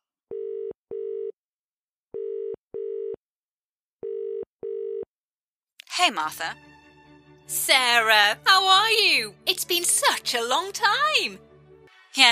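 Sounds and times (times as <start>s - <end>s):
steady electronic telephone ringing tones: 2.2s - 3.2s, 4.0s - 5.1s
speech: 6.0s - 6.7s, 7.5s - 11.5s, 12.2s - 12.3s.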